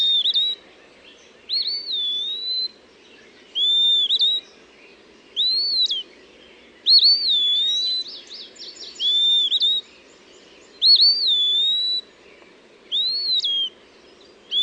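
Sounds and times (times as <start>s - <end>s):
Eastern Wood-Pewee whistled phrases: 0.0s - 0.6s, 1.5s - 2.8s, 3.5s - 4.6s, 5.4s - 6.1s, 6.8s - 9.9s, 10.8s - 12.1s, 12.9s - 13.8s.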